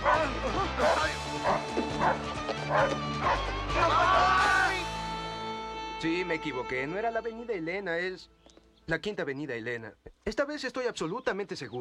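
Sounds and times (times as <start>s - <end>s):
people talking and shouting excitedly: 0.0s - 5.1s
small dog barking and yipping while attacking: 0.8s - 3.4s
speech: 6.2s - 11.7s.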